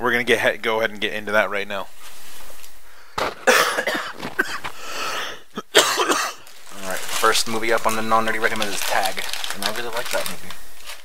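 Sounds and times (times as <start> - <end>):
speech: 0.0 - 2.2, 7.2 - 10.6
person coughing harshly: 3.2 - 6.4.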